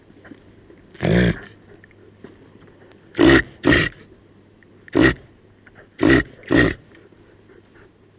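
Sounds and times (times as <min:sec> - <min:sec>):
constant low background hum: 0:00.0 - 0:08.1
reindeer grunting: 0:00.9 - 0:01.8, 0:03.1 - 0:04.1, 0:04.9 - 0:07.1.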